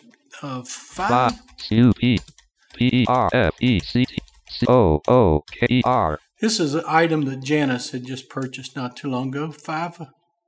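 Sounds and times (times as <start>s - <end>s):
speech: 0.4s - 10.2s
typing on a computer keyboard: 1.0s - 6.2s.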